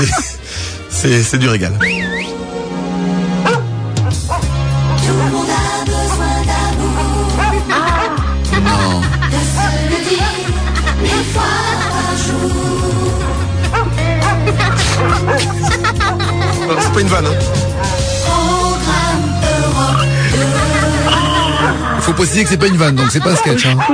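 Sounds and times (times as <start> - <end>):
speech: 0.0 - 0.3, 1.0 - 2.3, 15.8 - 18.0, 22.1 - 23.9
laughter: 0.0 - 0.4, 5.0 - 12.8, 14.0 - 17.5, 19.7 - 23.9
radio jingle music with steady bass line: 0.0 - 9.4, 14.9 - 23.9
dog barks, yips and whimpers: 3.4 - 4.5, 6.0 - 8.3, 13.7 - 17.1, 21.4 - 21.9, 23.4 - 23.9.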